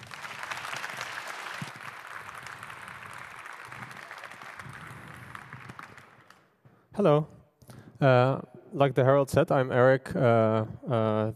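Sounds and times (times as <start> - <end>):
audience applause: 0.0 - 6.5
speech: 7.0 - 7.4, 8.0 - 11.3.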